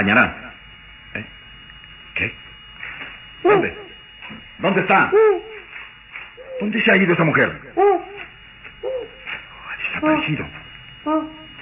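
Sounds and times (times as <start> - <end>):
speech: 0.0 - 0.4, 1.2 - 1.4, 2.2 - 2.5, 3.4 - 5.5, 6.6 - 9.1, 9.8 - 11.4
owl perched on dry branches hooting: 4.8 - 11.5.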